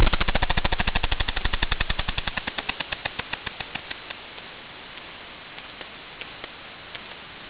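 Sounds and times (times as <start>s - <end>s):
machine gun: 0.0s - 4.1s.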